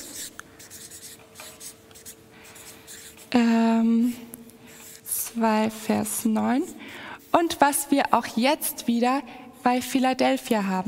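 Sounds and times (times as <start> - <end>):
pen writing a short note: 0.0 - 3.3, 4.7 - 5.1
speech: 3.3 - 4.3, 5.4 - 10.8.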